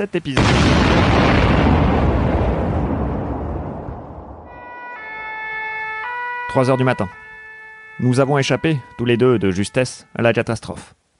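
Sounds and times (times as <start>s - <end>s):
speech: 0.0s - 1.6s, 6.5s - 7.2s, 8.0s - 11.0s
gas cylinder in an apartment exploding after being shot: 0.4s - 4.5s
emergency siren wailing in steady tones: 4.4s - 10.5s.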